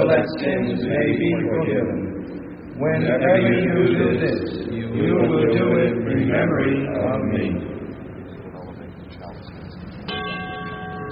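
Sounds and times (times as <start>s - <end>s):
low murmuring room sound: 0.0s - 10.1s
speech: 0.1s - 2.2s, 2.8s - 7.7s
small altar bell ringing at chalice elevation: 10.0s - 11.0s.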